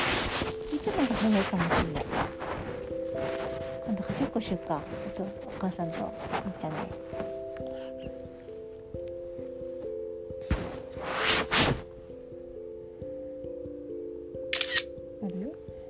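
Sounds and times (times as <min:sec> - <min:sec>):
soft tonal background: 0:00.0 - 0:15.8
speech: 0:01.2 - 0:02.4, 0:03.2 - 0:07.3
camera shutter clicks as a photo is taken: 0:14.5 - 0:14.9.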